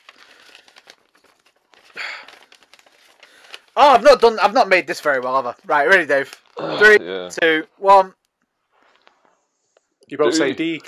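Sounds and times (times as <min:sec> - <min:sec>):
paper ripping tear: 0:00.0 - 0:04.3
paper crinkling and crackling: 0:00.0 - 0:06.6, 0:08.7 - 0:09.4
speech: 0:03.8 - 0:08.2, 0:10.1 - 0:10.8.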